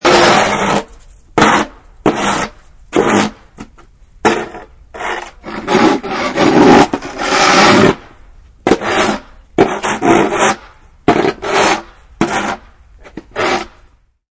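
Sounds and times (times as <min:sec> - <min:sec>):
shovel scraping ice off snowy sidewalk: 0:00.0 - 0:13.9.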